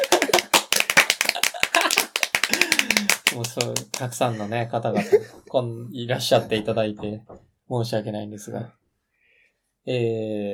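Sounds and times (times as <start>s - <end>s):
hands clapping in applause at a reading club event: 0.0s - 4.2s
speech: 3.4s - 8.8s, 9.8s - 10.5s.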